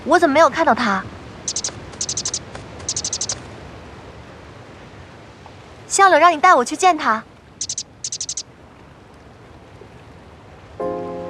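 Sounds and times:
speech: 0.0s - 1.7s, 5.9s - 7.3s
faint hiss: 0.0s - 11.2s
bird chirping short high bright notes: 1.4s - 3.4s, 7.6s - 8.4s.

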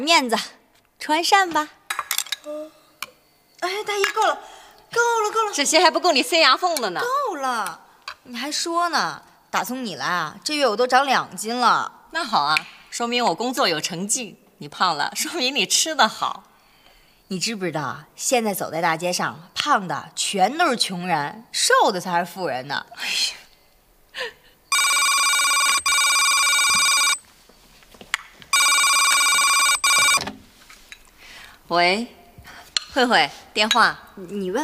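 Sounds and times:
speech: 0.0s - 1.8s, 2.4s - 2.8s, 3.6s - 16.5s, 17.3s - 23.4s, 24.2s - 24.4s, 31.7s - 32.2s, 33.0s - 34.6s
people chatting: 3.6s - 4.4s, 5.0s - 16.4s, 17.3s - 23.4s, 31.7s - 32.2s, 32.9s - 34.6s
telephone ringing in electronic bursts: 24.7s - 27.2s, 28.5s - 30.2s.

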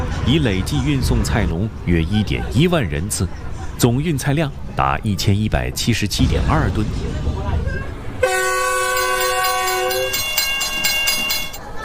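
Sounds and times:
slow passenger train rumbling in mountains: 0.0s - 11.8s
speech: 0.3s - 7.4s
passenger train horn blast: 8.2s - 10.4s
rhythmic clatter of train: 8.9s - 11.7s.

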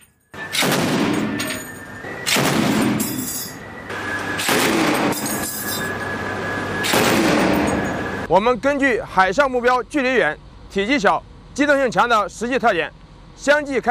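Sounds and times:
continuous rumbling noise: 0.0s - 13.9s
heavy machine gun warning fire aboard a warship: 0.4s - 3.4s, 4.4s - 5.6s, 6.8s - 8.0s
speech: 8.3s - 13.9s.

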